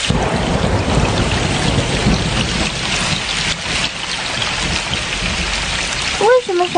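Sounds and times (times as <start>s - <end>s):
heavy rain during a thunderstorm: 0.0s - 6.7s
thunder rumbling during a thunderstorm: 0.0s - 6.7s.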